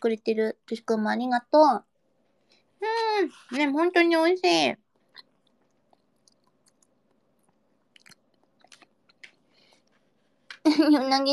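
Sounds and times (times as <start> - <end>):
speech: 0.0 - 1.9, 2.8 - 4.8, 10.6 - 11.3
faint chewing of hamburger steak: 4.9 - 10.6.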